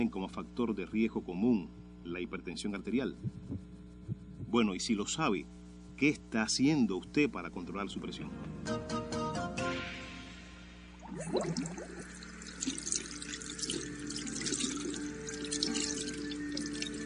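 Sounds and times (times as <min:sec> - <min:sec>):
speech: 0:00.0 - 0:03.7, 0:04.5 - 0:09.2, 0:11.2 - 0:11.8
water running from a tap into a sink, washing hands: 0:11.1 - 0:17.0.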